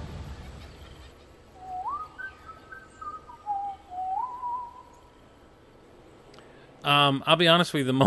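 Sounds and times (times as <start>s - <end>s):
man whistling a short melodic tune: 1.6s - 5.0s
speech: 6.9s - 8.0s.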